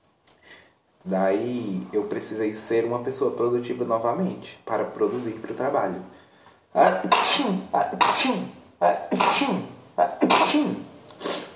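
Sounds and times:
speech: 1.0s - 6.2s, 6.8s - 11.3s
person sneezing: 6.9s - 11.5s.

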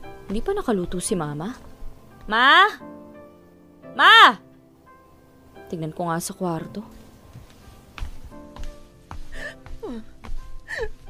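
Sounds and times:
speech: 0.3s - 1.7s, 2.3s - 2.9s, 4.0s - 4.4s, 5.7s - 7.0s, 9.8s - 10.1s, 10.8s - 11.0s
mother sobbing and whimpering in a bedroom at home: 9.3s - 11.0s.

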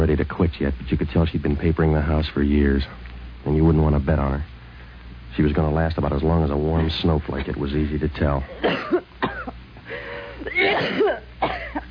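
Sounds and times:
speech: 0.0s - 4.5s, 5.3s - 9.0s
person coughing: 8.5s - 9.6s, 10.2s - 11.8s.

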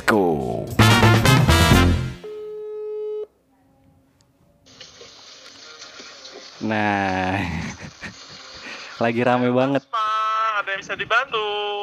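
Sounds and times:
music: 0.0s - 2.3s, 4.8s - 10.0s
speech: 0.1s - 1.4s, 6.6s - 7.8s, 9.0s - 10.0s, 10.8s - 11.8s
laughter: 7.1s - 9.0s.

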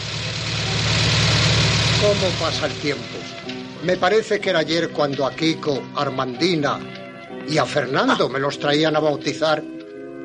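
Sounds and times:
car engine idling as the car pulls up in a 1958 setting: 0.0s - 3.8s
speech: 2.0s - 9.8s.

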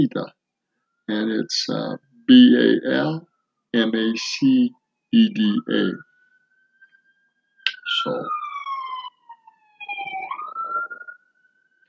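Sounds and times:
speech: 0.0s - 0.4s, 1.1s - 6.1s, 8.0s - 8.4s
rumbling traffic noise: 1.1s - 3.2s, 3.8s - 6.0s, 7.7s - 11.0s
emergency vehicle siren wailing on a busy street: 1.1s - 11.8s.

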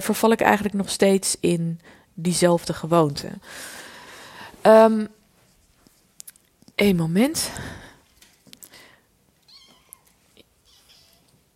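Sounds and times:
speech: 0.0s - 3.8s, 4.6s - 5.2s, 6.8s - 7.8s
soft rustling and scraping of cat moving inside something: 5.3s - 6.2s
cat meowing while climbing into something: 9.4s - 11.3s.

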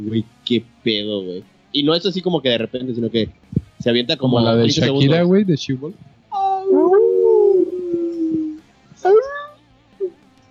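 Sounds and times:
speech: 0.0s - 6.1s
wolf howling: 6.3s - 10.2s.

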